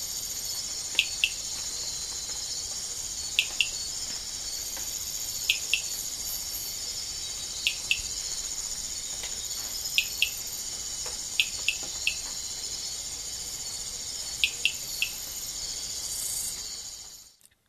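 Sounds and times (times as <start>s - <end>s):
steady high insect hiss in the Ecuadorian Amazon: 0.0s - 17.4s
Amazonian rain frog chirping in the Ecuadorian Amazon: 1.0s - 1.5s, 3.3s - 3.9s, 5.4s - 6.1s, 7.6s - 8.2s, 9.9s - 10.5s, 14.3s - 15.3s.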